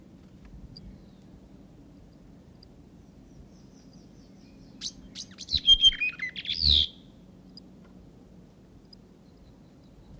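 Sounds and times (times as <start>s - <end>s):
male whitehead territorial call of high chirps and whistled notes: 5.2s - 7.0s.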